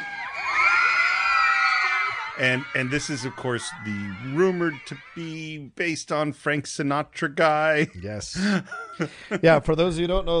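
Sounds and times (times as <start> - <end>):
crowd of wedding guests screaming excitedly: 0.0 - 5.8
speech: 2.4 - 10.3.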